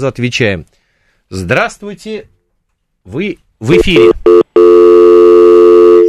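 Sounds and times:
speech: 0:00.0 - 0:02.4, 0:03.0 - 0:04.4
electronic telephone busy tone after a dropped call: 0:03.7 - 0:06.0.

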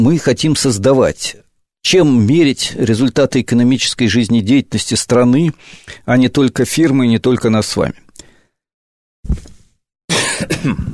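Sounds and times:
speech: 0:00.0 - 0:08.0, 0:09.2 - 0:09.5, 0:10.4 - 0:10.9
person coughing: 0:10.1 - 0:10.9.

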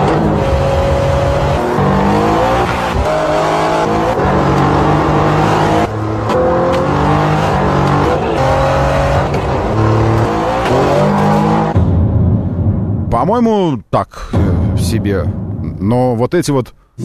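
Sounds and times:
car engine revving from an automaker promo: 0:00.0 - 0:13.1
speech: 0:13.4 - 0:17.0.

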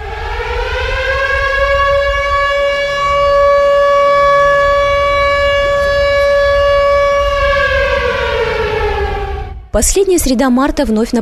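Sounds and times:
civil defense warning siren wailing: 0:00.0 - 0:11.1
speech: 0:09.8 - 0:11.1.

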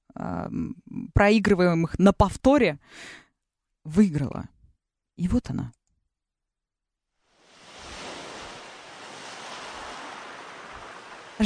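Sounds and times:
speech: 0:00.2 - 0:03.2, 0:03.8 - 0:04.6, 0:05.2 - 0:05.8
sea waves, surf noise: 0:07.2 - 0:11.4.

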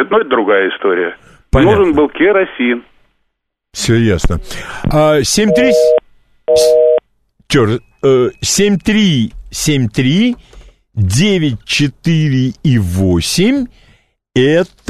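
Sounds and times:
speech: 0:00.0 - 0:02.9, 0:03.7 - 0:06.8, 0:07.5 - 0:13.8, 0:14.4 - 0:14.8
telephone busy tone beeps: 0:05.5 - 0:07.0.

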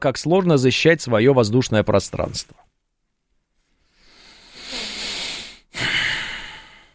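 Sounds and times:
speech: 0:00.0 - 0:02.8
heavy breathing into the microphone: 0:03.8 - 0:06.9.

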